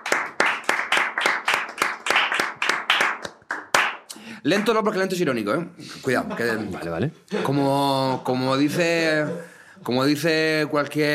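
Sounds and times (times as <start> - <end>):
rhythmic hand claps: 0.0 - 4.2
speech: 4.4 - 11.1.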